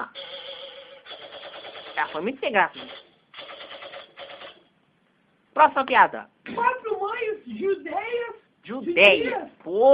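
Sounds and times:
rapid rattling gunfire sound effect: 1.1 - 4.6
speech: 2.0 - 3.1, 5.6 - 9.9.

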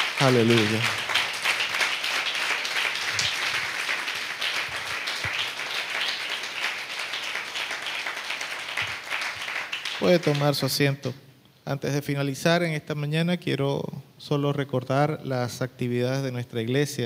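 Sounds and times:
crowd applauding with many hands clapping: 0.0 - 10.7
speech: 0.2 - 1.0, 10.0 - 17.0.

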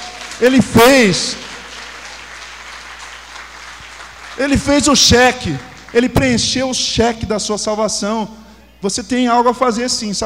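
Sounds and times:
audience applauding: 0.0 - 6.3
speech: 0.4 - 1.5, 4.4 - 10.2.

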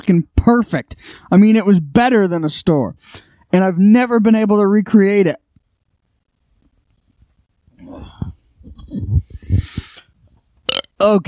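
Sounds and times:
speech: 0.1 - 5.4, 11.0 - 11.2
long croaking burp: 10.7 - 11.1.

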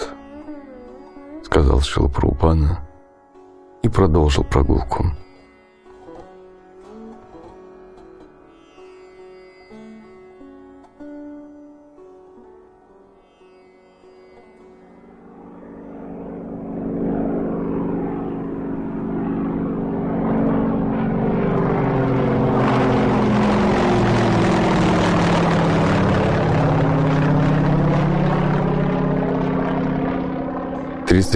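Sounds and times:
speech: 1.5 - 2.8, 3.8 - 5.2, 31.2 - 31.3
propeller airplane engine flying through a storm to New Orleans: 15.0 - 31.3.

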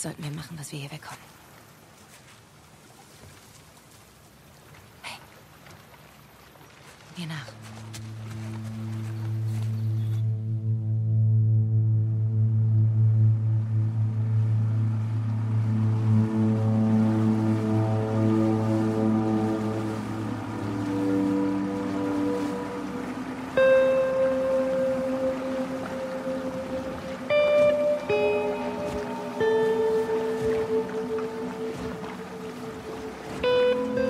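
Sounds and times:
speech: 0.0 - 1.4, 7.2 - 8.1
small motorboat engine droning over flooded streets: 7.5 - 34.0
high sustained tones: 8.1 - 34.0.

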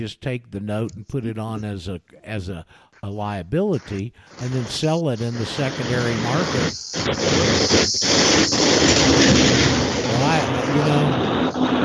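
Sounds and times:
speech: 0.0 - 11.8
aircraft engine noise from Van Nuys airport in Los Angeles: 3.9 - 11.8.

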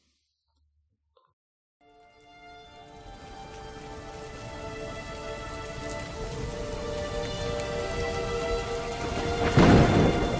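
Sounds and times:
steady rain falling: 2.2 - 10.3.

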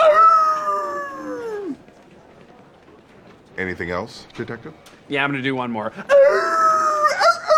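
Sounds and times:
person imitating a wolf howl: 0.0 - 1.8, 6.1 - 7.5
speech: 3.6 - 6.4.

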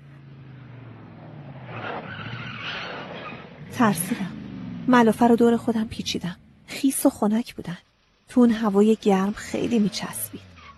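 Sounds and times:
car tires skidding: 0.0 - 6.7, 9.2 - 10.7
car engine rumbling: 0.0 - 10.7
speech: 3.8 - 10.4.

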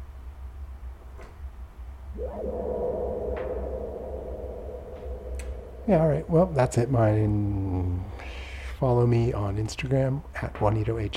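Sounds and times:
rising synthesizer tone swelling into a hazy wash: 2.1 - 7.8
speech: 2.2 - 3.2, 5.9 - 11.1
faint synthesized ticking blips: 2.2 - 7.1
synthesized low droning rumble: 2.2 - 8.0.

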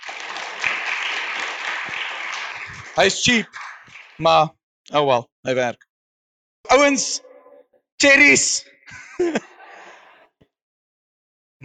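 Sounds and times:
rapid dense hand clapping: 0.0 - 4.4
speech: 3.0 - 3.6, 4.2 - 5.9, 6.7 - 7.3, 8.0 - 9.5
laughter: 8.9 - 10.0.

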